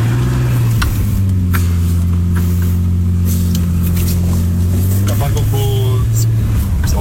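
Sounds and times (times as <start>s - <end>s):
car engine droning: 0.0s - 6.9s
voices: 5.0s - 6.9s.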